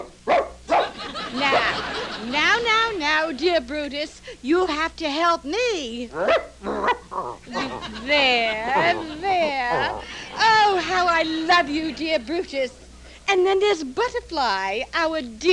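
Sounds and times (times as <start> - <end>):
attack dog barking: 0.0 - 1.0, 6.2 - 7.3
laughter: 0.8 - 3.0, 7.5 - 12.5
speech: 2.3 - 15.5.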